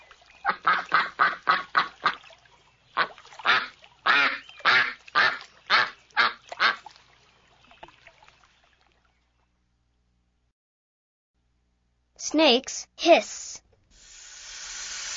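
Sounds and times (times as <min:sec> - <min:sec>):
ducks quacking: 0:00.4 - 0:02.3, 0:03.0 - 0:06.9
speech: 0:12.3 - 0:13.5.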